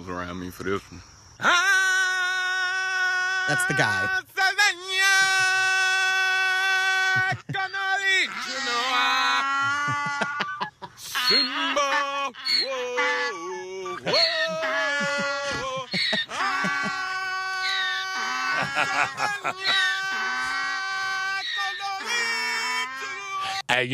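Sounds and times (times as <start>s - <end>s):
speech: 0.0s - 1.8s, 3.5s - 4.4s, 7.2s - 9.2s, 11.3s - 13.4s, 18.8s - 19.9s, 23.8s - 23.9s
donkey braying: 1.4s - 23.7s
laughter: 6.8s - 23.6s.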